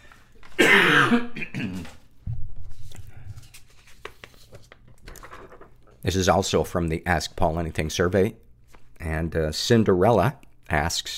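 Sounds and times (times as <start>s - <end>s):
person coughing: 0.6s - 2.0s
rasping throat clearing: 0.6s - 2.0s
speech: 1.1s - 1.3s, 6.0s - 8.4s, 9.2s - 11.1s.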